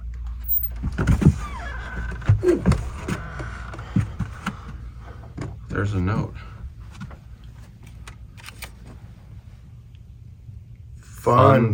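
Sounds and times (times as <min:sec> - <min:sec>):
door creaking open: 0:00.4 - 0:03.2
speech: 0:01.0 - 0:01.3, 0:05.8 - 0:06.5, 0:11.3 - 0:11.7.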